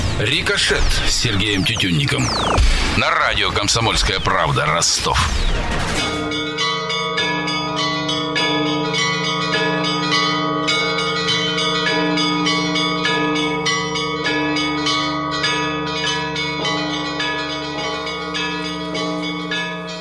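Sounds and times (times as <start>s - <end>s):
speech: 0.2s - 6.4s
Easter church bells ringing in a full peal: 5.8s - 19.9s.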